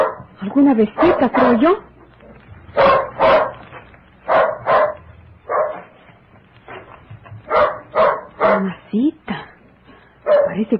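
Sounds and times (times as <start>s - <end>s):
dog barking at a stranger: 0.0s - 0.3s, 1.0s - 1.4s, 2.8s - 6.0s, 7.5s - 8.8s, 10.2s - 10.6s
speech: 0.4s - 1.9s.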